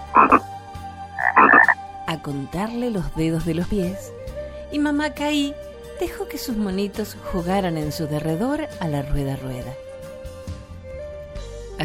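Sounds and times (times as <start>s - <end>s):
toad croaking: 0.0s - 0.5s, 1.2s - 1.8s
speech: 0.2s - 0.6s, 2.1s - 9.9s.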